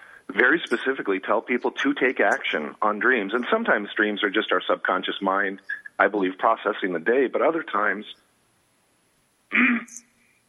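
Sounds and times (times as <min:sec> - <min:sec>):
speech: 0:00.3 - 0:08.2, 0:09.5 - 0:10.1
throat clearing: 0:09.5 - 0:10.0.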